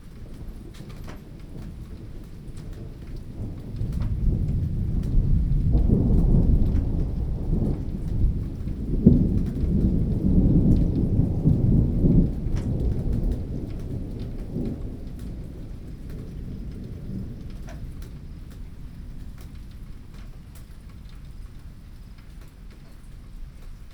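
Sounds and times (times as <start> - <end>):
rumbling rain: 0.0 - 23.9.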